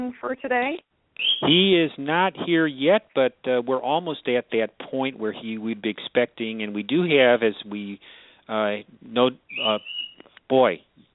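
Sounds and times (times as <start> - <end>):
speech: 0.0 - 10.9
pet bird squawking: 1.2 - 1.5, 9.5 - 10.2.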